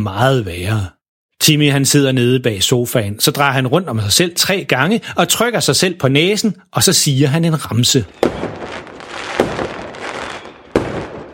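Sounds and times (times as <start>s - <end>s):
speech: 0.0s - 8.8s
fireworks bursting with sharp bangs: 8.1s - 11.3s.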